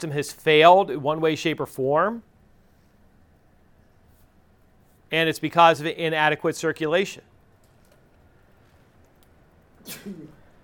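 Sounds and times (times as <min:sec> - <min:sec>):
speech: 0:00.0 - 0:02.3, 0:05.1 - 0:07.3, 0:09.8 - 0:10.4
person sneezing: 0:09.8 - 0:10.5.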